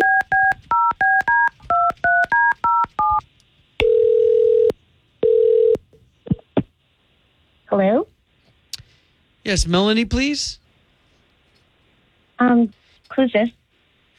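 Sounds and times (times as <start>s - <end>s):
telephone keypad tones dialing a phone: 0.0s - 3.2s, 3.8s - 5.8s
speech: 9.5s - 10.6s, 12.5s - 13.6s.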